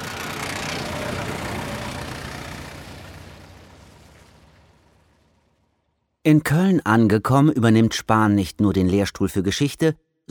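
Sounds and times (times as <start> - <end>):
truck engine chugging and rattling while hauling a private library: 0.0 - 6.0
speech: 6.2 - 10.2.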